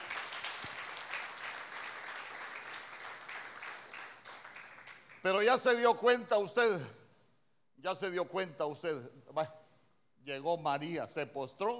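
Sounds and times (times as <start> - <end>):
audience clapping hands in applause: 0.0 - 5.8
speech: 5.2 - 7.0, 7.8 - 9.6, 10.2 - 11.7.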